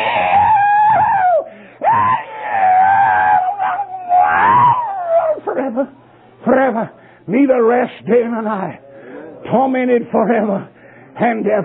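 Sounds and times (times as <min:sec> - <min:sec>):
high-pitched screaming wails: 0:00.0 - 0:05.5
speech: 0:07.6 - 0:08.8, 0:09.4 - 0:11.6.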